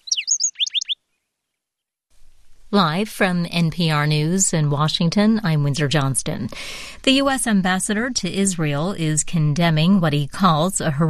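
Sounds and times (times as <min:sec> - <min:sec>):
black-throated sparrow singing: 0:00.0 - 0:01.0
speech: 0:02.7 - 0:11.0.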